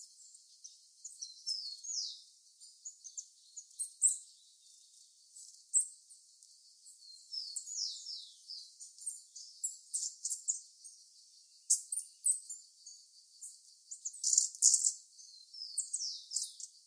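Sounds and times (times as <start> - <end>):
bird singing high thin downslurred notes and twitters: 0.0 - 16.8.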